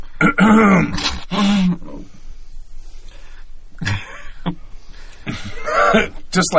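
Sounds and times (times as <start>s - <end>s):
person imitating a guard clearing his throat: 0.2s - 2.0s, 5.3s - 6.2s.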